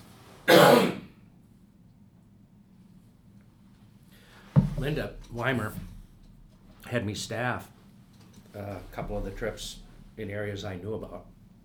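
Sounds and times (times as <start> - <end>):
person coughing: 0.5 - 1.1
speech: 4.8 - 5.9, 6.9 - 7.8, 8.6 - 11.4.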